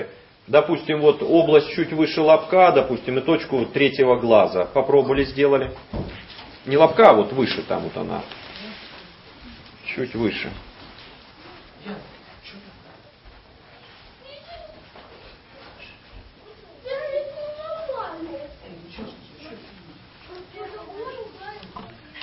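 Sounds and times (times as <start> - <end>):
speech: 0.0 - 8.4, 9.9 - 10.7, 11.8 - 12.7
children squabbling in the background: 14.2 - 18.6.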